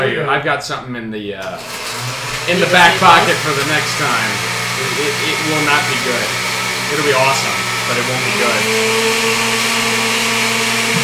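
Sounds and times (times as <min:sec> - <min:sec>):
speech: 0:00.0 - 0:10.2
blender running at full speed: 0:01.4 - 0:11.0.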